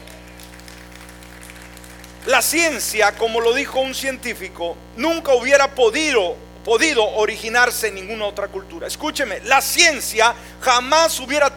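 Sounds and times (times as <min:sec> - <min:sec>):
crowd applauding: 0:00.0 - 0:03.5
speech: 0:02.3 - 0:11.5.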